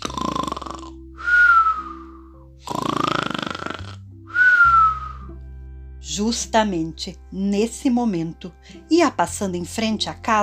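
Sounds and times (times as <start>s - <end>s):
loud snoring with whistling breath: 0.0s - 5.3s
speech: 6.2s - 10.4s.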